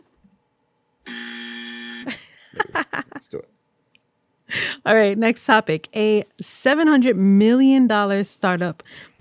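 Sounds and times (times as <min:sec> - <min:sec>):
loud game-show style buzzer: 0:01.0 - 0:02.2
laughter: 0:02.1 - 0:03.4
speech: 0:04.9 - 0:09.1.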